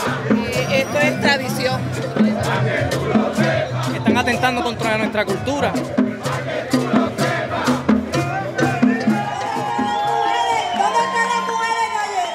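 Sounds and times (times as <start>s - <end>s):
large protest crowd in Puerto Rico shouting rhythmically: 0.0s - 12.3s
speech: 4.4s - 6.8s
protest crowd cheering and whooping: 8.2s - 12.3s.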